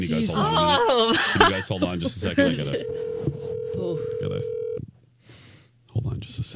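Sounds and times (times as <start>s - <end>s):
speech: 0.0s - 3.2s
laughter: 0.4s - 3.0s
steady electronic hum: 2.8s - 4.8s
telephone keypad dialing tones: 2.8s - 4.8s.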